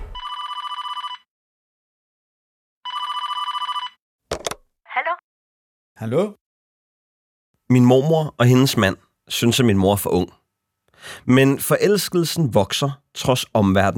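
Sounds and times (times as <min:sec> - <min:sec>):
telephone ringing in buzzing bursts: 0:00.1 - 0:01.3, 0:02.9 - 0:04.0
speech: 0:06.0 - 0:06.4, 0:07.7 - 0:13.9.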